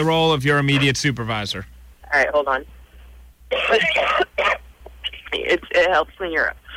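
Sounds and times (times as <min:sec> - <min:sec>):
speech: 0:00.0 - 0:02.8, 0:03.5 - 0:04.6, 0:05.3 - 0:06.7
person forcing heavy rasping fake coughs to sound sick on the phone: 0:03.5 - 0:04.6.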